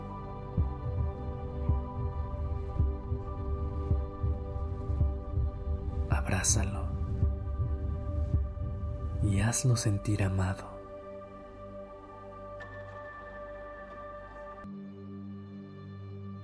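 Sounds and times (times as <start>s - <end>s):
low hum: 0.0s - 9.7s
heartbeat: 0.6s - 9.7s
speech: 6.4s - 6.8s, 9.3s - 10.7s.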